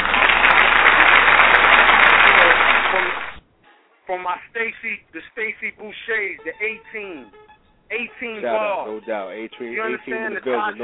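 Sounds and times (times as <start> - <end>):
crowd applauding: 0.0 - 3.4
speech: 4.3 - 10.8.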